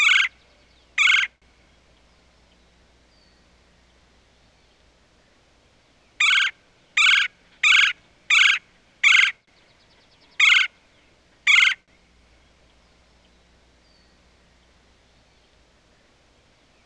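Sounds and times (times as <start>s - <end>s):
red-bellied woodpecker churr calls: 0.0s - 1.4s, 6.2s - 9.4s, 10.2s - 10.8s, 11.4s - 11.9s.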